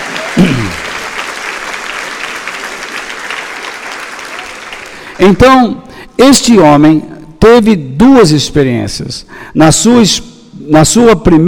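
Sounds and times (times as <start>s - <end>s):
large crowd applauding: 0.0s - 5.4s
speech: 5.2s - 11.4s.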